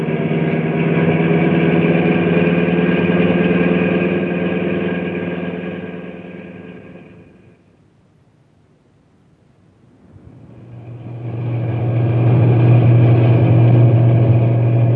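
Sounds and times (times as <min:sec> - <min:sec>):
truck engine roaring while driven fast through a park: 0:00.0 - 0:07.6, 0:10.0 - 0:14.9.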